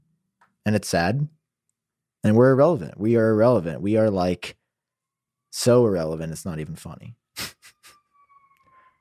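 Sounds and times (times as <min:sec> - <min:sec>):
speech: 0:00.6 - 0:01.4, 0:02.2 - 0:04.6, 0:05.5 - 0:07.5
emergency vehicle siren: 0:04.8 - 0:06.4, 0:07.6 - 0:08.9.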